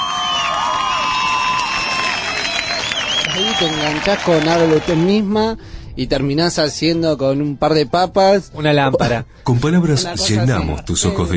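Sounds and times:
crowd screaming and shrieking with excitement: 0.0 - 5.1
speech: 3.4 - 11.3.

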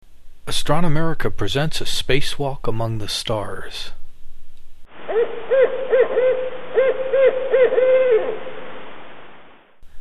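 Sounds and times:
speech: 0.5 - 4.0, 7.3 - 8.5
barred owl hooting at night: 4.9 - 8.7.

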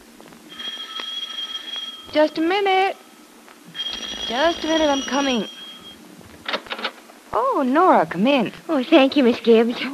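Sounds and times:
low hiss: 0.0 - 9.9
electric doorbell ringing in a house: 0.5 - 2.2, 3.7 - 6.0
speech: 2.1 - 3.0, 3.7 - 5.6, 7.4 - 9.9.

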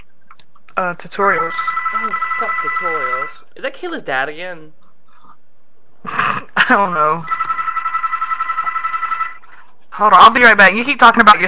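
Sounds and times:
speech: 0.8 - 4.8, 6.0 - 7.4, 10.0 - 11.4
loud electronic telephone ring with fast warbling pulse: 1.3 - 3.4, 7.2 - 9.6.

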